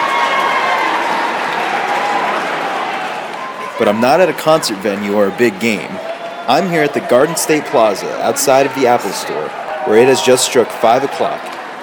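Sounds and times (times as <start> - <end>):
excited crowd cheering and applauding outside a shopping-mall store: 0.0 - 11.8
speech: 3.8 - 11.6.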